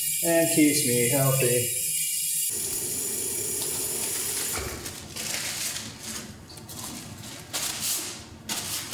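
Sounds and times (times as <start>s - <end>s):
warm water running from a tap over hands being washed: 0.0s - 5.0s
speech: 0.2s - 1.9s, 2.5s - 3.2s.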